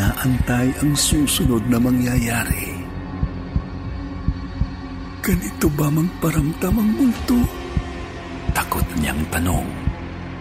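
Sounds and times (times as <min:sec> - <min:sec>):
loud pounding heartbeat sound effect: 0:00.0 - 0:04.9, 0:07.5 - 0:09.0
constant dull hum: 0:00.0 - 0:10.3
speech: 0:00.2 - 0:02.8, 0:05.3 - 0:07.6, 0:08.6 - 0:09.8.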